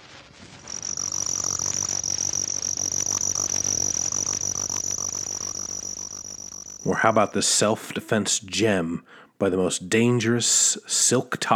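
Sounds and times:
spotted ground cricket Nemobius maculatus trilling: 0:00.5 - 0:08.2
speech: 0:06.9 - 0:11.5.

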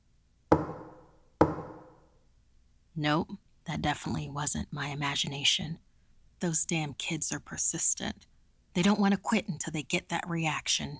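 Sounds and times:
knocking on a window pane: 0:00.5 - 0:01.9
speech: 0:03.0 - 0:05.8, 0:06.4 - 0:10.9.

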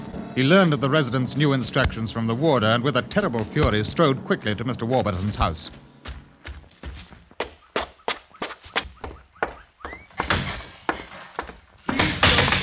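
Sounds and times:
speech: 0:00.4 - 0:05.8
door slamming shut: 0:10.1 - 0:10.8, 0:11.9 - 0:12.6.

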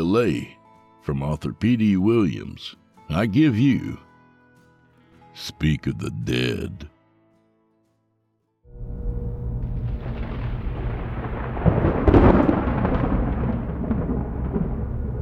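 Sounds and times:
speech: 0:00.0 - 0:04.1, 0:05.4 - 0:06.9
faint rain hiss: 0:08.8 - 0:15.2
low rumbling thunder: 0:08.8 - 0:15.2.

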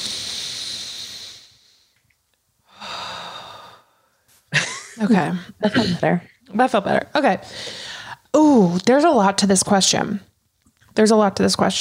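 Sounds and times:
person breathing in deeply: 0:00.0 - 0:02.0, 0:02.6 - 0:04.2, 0:07.4 - 0:08.3
speech: 0:05.0 - 0:07.8, 0:08.4 - 0:10.3, 0:11.0 - 0:11.8.

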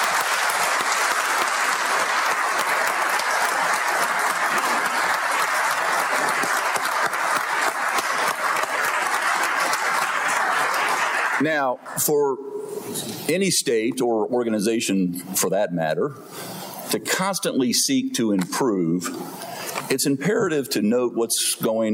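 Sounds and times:
large audience applauding: 0:00.0 - 0:12.0
speech: 0:11.4 - 0:21.9.

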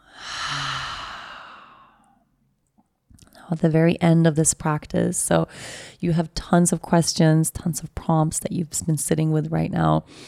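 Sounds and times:
long deep breath during a guided breathing practice: 0:00.0 - 0:02.2
speech: 0:03.5 - 0:10.2.

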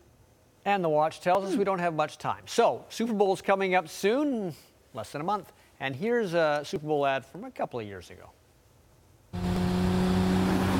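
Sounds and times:
speech: 0:00.6 - 0:08.4
car engine roaring to life and revving in a commercial: 0:09.4 - 0:10.7.

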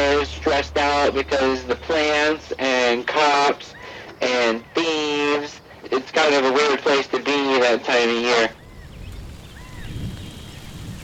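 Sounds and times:
speech: 0:00.3 - 0:08.6
steady rain falling: 0:08.3 - 0:11.0.

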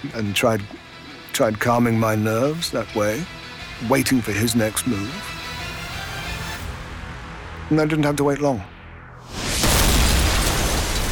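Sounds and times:
speech: 0:00.0 - 0:00.8, 0:01.4 - 0:05.4, 0:07.7 - 0:08.7
torpedo exploding amidships on a ship: 0:08.8 - 0:11.1.

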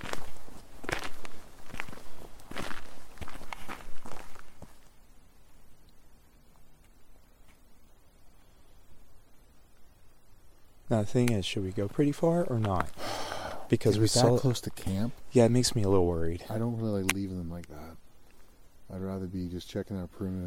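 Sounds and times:
footsteps walking towards a cemetery: 0:00.0 - 0:05.0, 0:11.9 - 0:13.0
speech: 0:10.9 - 0:13.0, 0:13.7 - 0:18.0, 0:18.9 - 0:20.4.

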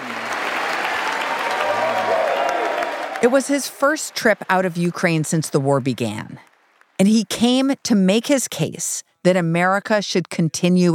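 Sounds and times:
faint cheering voices: 0:00.0 - 0:03.5
large crowd applauding in a big hall in Congress: 0:00.0 - 0:07.1
speech: 0:03.2 - 0:10.9.

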